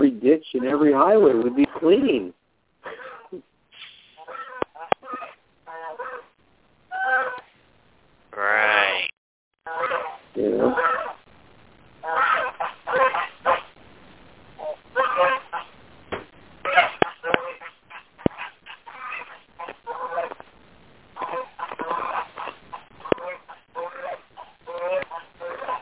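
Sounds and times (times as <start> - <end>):
speech: 0.2 - 3.5
flock of geese honking: 4.1 - 7.5, 8.4 - 11.2, 12.0 - 13.8, 14.6 - 15.7, 16.6 - 20.5, 21.2 - 25.7.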